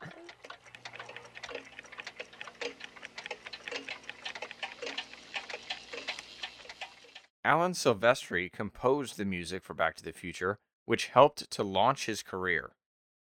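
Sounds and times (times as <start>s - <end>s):
dozens of clocks ticking out of sync: 0.0s - 7.3s
speech: 7.5s - 12.8s.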